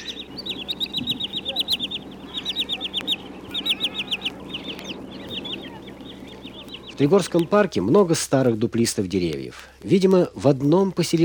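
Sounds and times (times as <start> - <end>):
green sandpiper piping calls: 0.0 - 7.8
faint clucking: 0.0 - 10.0
low rumbling background: 0.0 - 11.2
speech: 7.0 - 11.2.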